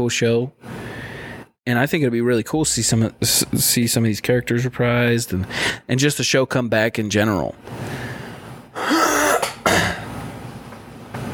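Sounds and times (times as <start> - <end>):
speech: 0.0 - 0.9, 1.6 - 8.1
person clearing throat to dislodge a clump: 8.8 - 10.1.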